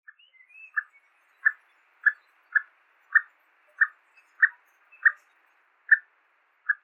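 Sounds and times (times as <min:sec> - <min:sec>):
Chinese Bamboo Partridge calling: 0:00.1 - 0:06.8.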